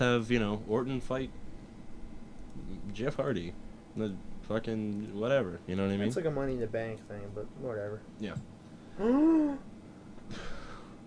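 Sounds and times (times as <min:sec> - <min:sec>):
speech: 0:00.0 - 0:01.5, 0:02.6 - 0:09.7, 0:10.3 - 0:10.6
person gasping sharply: 0:10.3 - 0:11.0.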